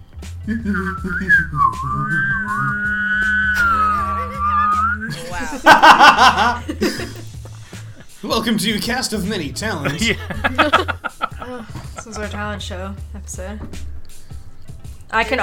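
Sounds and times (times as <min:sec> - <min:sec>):
speech: 0:00.4 - 0:03.4, 0:05.1 - 0:07.2, 0:08.2 - 0:10.9, 0:11.5 - 0:13.9, 0:15.1 - 0:15.4
person whistling a wavering melody: 0:00.4 - 0:05.4
person humming a steady low note: 0:00.5 - 0:05.2
person laughing: 0:03.6 - 0:07.4, 0:09.8 - 0:12.4.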